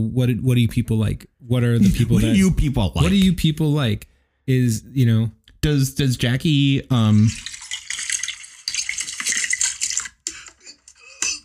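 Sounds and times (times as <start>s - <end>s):
speech: 0.0s - 7.5s
liquid pouring with a splashy hissing water rush: 6.9s - 11.0s.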